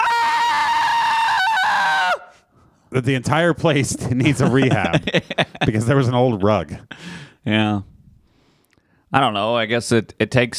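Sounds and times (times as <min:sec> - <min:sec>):
person letting out an exaggerated scream: 0:00.0 - 0:02.3
speech: 0:02.9 - 0:07.9, 0:09.1 - 0:10.5
laughter: 0:03.2 - 0:07.1.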